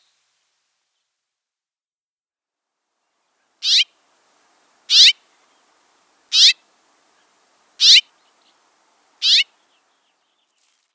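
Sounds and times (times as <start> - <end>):
finch twittering with chirps and buzzy note: 3.6 - 3.8, 4.9 - 5.2, 6.3 - 6.6, 7.8 - 8.6, 9.2 - 9.5
finch harsh rasping calls: 3.6 - 3.9, 4.7 - 9.8.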